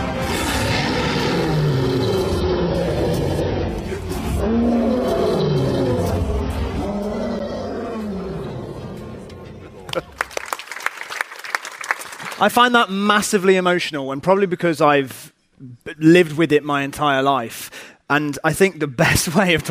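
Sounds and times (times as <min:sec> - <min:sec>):
lion roaring in long rumbling bursts: 0:00.1 - 0:10.0
speech: 0:12.4 - 0:19.7.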